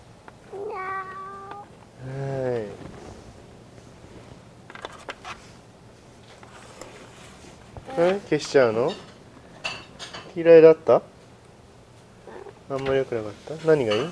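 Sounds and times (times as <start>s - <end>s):
cat meowing: 0.5s - 1.7s
speech: 8.0s - 9.1s, 10.4s - 11.1s, 12.7s - 14.1s.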